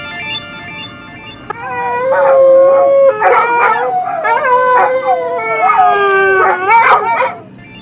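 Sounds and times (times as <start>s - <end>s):
several dogs howling together: 1.6s - 7.6s.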